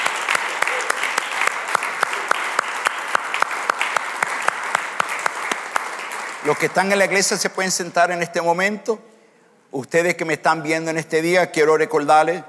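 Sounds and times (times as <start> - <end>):
crowd of people applauding loudly: 0.0 - 7.2
speech: 6.4 - 9.1, 9.7 - 12.4.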